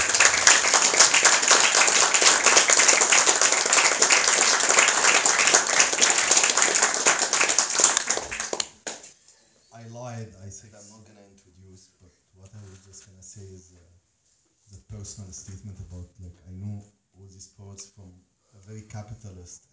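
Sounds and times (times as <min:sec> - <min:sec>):
crowd applauding for a poet: 0:00.0 - 0:09.1.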